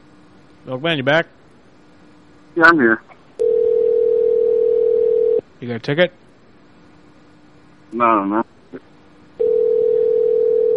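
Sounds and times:
speech: 0:00.7 - 0:01.4, 0:02.6 - 0:03.1, 0:05.6 - 0:06.2, 0:07.9 - 0:08.4
outgoing phone call ringing tone: 0:03.4 - 0:05.4, 0:09.4 - 0:10.7.

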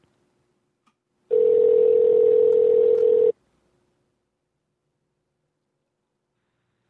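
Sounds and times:
telephone call being dialed, single steady tone: 0:01.3 - 0:03.3.

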